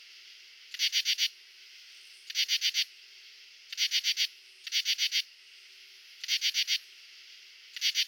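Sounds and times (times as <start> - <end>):
male common true katydid Pterophylla camellifolia calling: 0.7 - 1.4, 2.2 - 2.9, 3.7 - 5.3, 6.2 - 6.9, 7.7 - 8.0.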